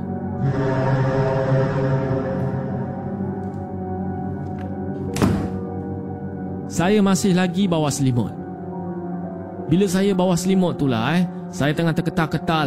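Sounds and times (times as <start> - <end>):
steady low droning hum: 0.2 - 4.9
open door slamming shut by itself: 5.1 - 5.7
speech: 6.8 - 8.4, 9.7 - 12.6.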